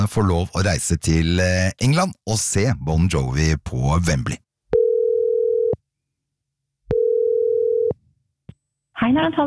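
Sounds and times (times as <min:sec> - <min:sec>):
speech: 0:00.0 - 0:04.4, 0:09.0 - 0:09.4
telephone ringback tone while calling: 0:04.8 - 0:05.8, 0:06.9 - 0:07.9.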